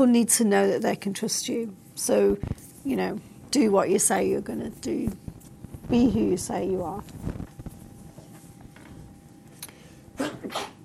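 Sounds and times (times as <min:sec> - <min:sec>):
speech: 0:00.0 - 0:05.3, 0:05.9 - 0:07.4
sharp double sneeze: 0:10.2 - 0:10.8.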